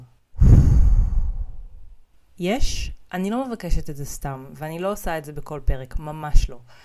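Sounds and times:
breathy exhale like a deep sigh: 0:00.4 - 0:01.7
speech: 0:02.4 - 0:06.8.

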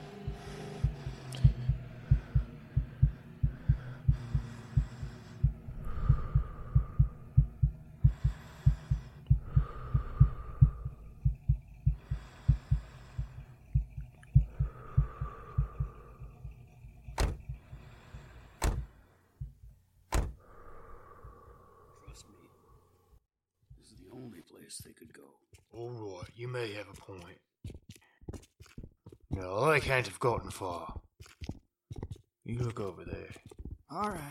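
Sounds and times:
racing heartbeat sound effect: 0:00.0 - 0:17.8, 0:19.4 - 0:20.4
speech: 0:24.7 - 0:27.5, 0:29.4 - 0:31.0, 0:32.5 - 0:34.3.

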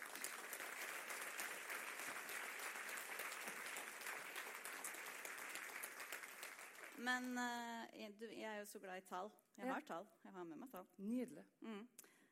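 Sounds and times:
crowd of many hands clapping: 0:00.0 - 0:07.0
speech: 0:07.0 - 0:12.0.

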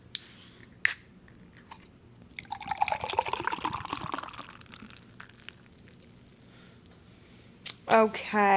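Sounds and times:
beer glugging and splashing into a glass: 0:02.3 - 0:06.1
speech: 0:07.9 - 0:08.5.

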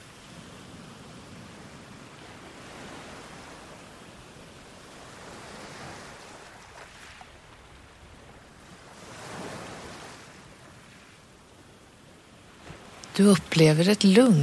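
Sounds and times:
soft waves lapping at the shoreline: 0:00.0 - 0:14.4
speech: 0:13.2 - 0:14.4.

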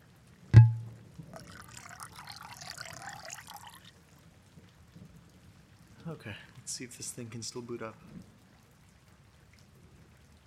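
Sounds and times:
glass clink: 0:00.6 - 0:00.9
wine being poured into a glass: 0:00.6 - 0:03.9
speech: 0:06.1 - 0:08.3.

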